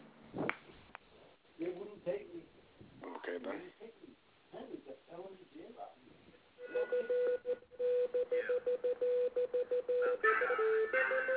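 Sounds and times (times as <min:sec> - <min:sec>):
loud electronic tone beeping in a Morse-code-like pattern: 0:06.6 - 0:11.3.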